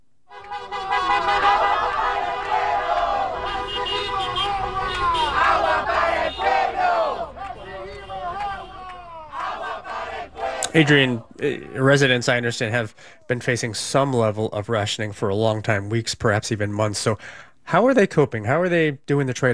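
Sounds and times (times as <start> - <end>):
car horns honking: 0.3 - 11.2
large protest crowd shouting and chanting: 0.4 - 11.8
speech: 10.8 - 19.5.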